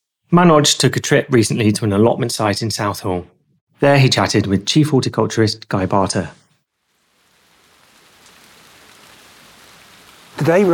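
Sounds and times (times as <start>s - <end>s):
speech: 0.3s - 6.4s, 10.4s - 10.7s
heavy rain pattering and dripping from a canopy at an allotment site in Southall: 6.7s - 10.7s.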